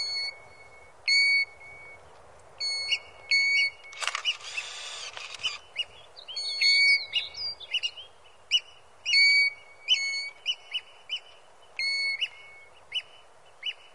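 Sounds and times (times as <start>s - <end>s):
European golden plover calls: 0.0s - 2.0s, 2.6s - 13.9s.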